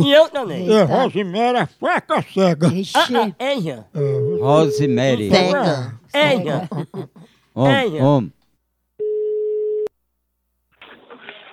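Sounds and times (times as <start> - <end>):
speech: 0.0 - 8.4
telephone ringing tone while placing a call: 4.2 - 5.2, 9.0 - 9.9
laughter: 5.1 - 7.4.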